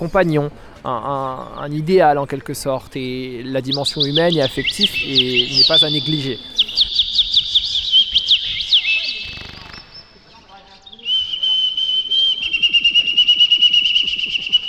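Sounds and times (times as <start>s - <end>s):
speech: 0.0s - 6.9s
faint murmuring at a pet market: 0.0s - 14.6s
chorus of small birds for sale chirping at a pet market: 3.6s - 11.5s
steady rhythmic bird trill: 3.7s - 14.6s.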